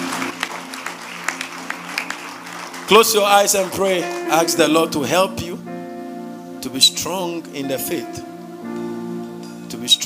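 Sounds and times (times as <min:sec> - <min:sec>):
audience clapping: 0:00.0 - 0:04.9
speech: 0:02.9 - 0:05.5, 0:06.6 - 0:08.3, 0:09.9 - 0:10.0.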